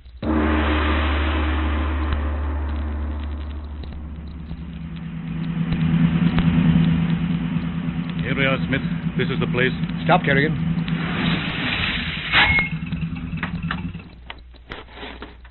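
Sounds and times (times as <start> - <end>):
car engine starting: 0.0 - 14.4
speech: 8.6 - 10.8.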